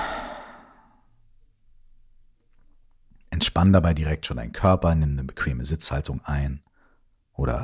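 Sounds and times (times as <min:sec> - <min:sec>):
deep exhale through the mouth during a relaxation breathing exercise: 0:00.0 - 0:01.0
speech: 0:03.4 - 0:06.7, 0:07.4 - 0:07.6.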